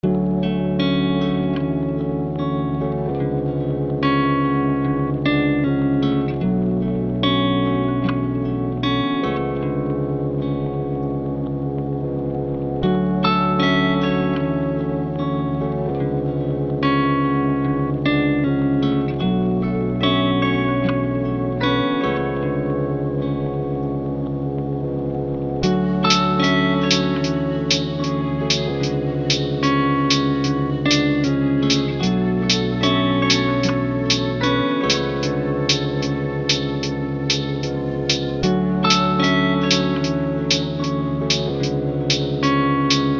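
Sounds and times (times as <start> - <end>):
lofi melody in F minor: 0.0 - 43.1.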